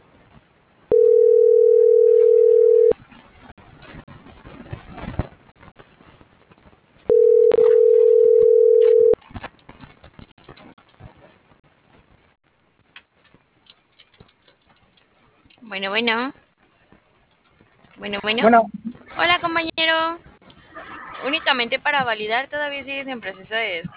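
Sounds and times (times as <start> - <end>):
faint noise: 0.0 - 23.9
telephone ringback tone while a call is dialed: 0.9 - 2.9, 7.1 - 9.2
speech: 15.8 - 16.4, 18.0 - 20.3, 21.2 - 23.9.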